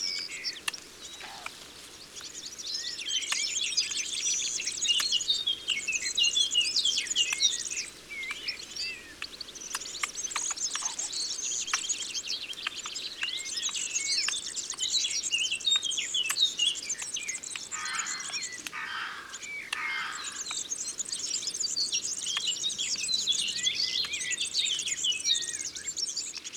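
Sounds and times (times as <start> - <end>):
red squirrel calling: 0.0 - 25.9.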